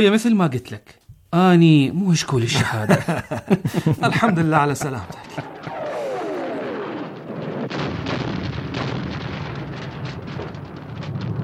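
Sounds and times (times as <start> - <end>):
speech: 0.0 - 5.8
laughter: 2.5 - 5.8
explosions near the airport near Baghdad Iraq: 3.9 - 11.4
falling whistle: 5.4 - 7.3.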